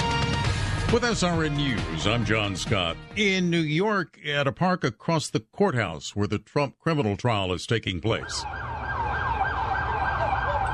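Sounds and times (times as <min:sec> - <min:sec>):
speech: 0:00.9 - 0:08.7
ambulance siren wailing in a New York park: 0:08.1 - 0:10.7.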